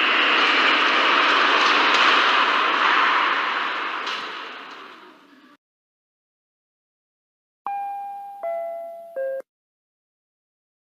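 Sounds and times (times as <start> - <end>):
Intercity Express train pulling into platform: 0.0 - 5.6.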